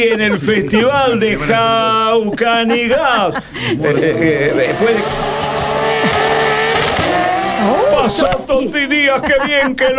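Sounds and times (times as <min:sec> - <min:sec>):
speech: 0:00.0 - 0:05.4, 0:07.6 - 0:09.9
laughter: 0:00.0 - 0:09.9
rally car roaring past at speed over a jump: 0:03.6 - 0:08.5.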